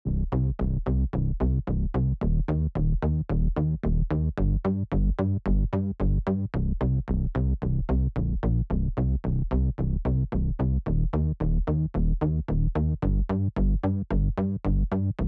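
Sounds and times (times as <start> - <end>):
dark disco synth bass in retro 80s synthwave style: 0.1 - 15.2.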